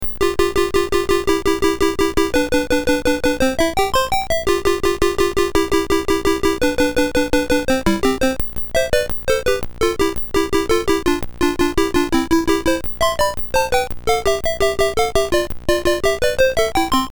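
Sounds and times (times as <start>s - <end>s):
music keyboard playing: 0.1s - 17.1s.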